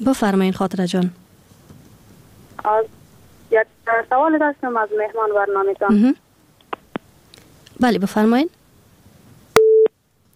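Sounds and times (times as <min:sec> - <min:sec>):
speech: 0:00.0 - 0:01.2, 0:02.6 - 0:06.2, 0:07.8 - 0:08.6
busy-signal beep after a call-in phone call drops: 0:09.6 - 0:09.9.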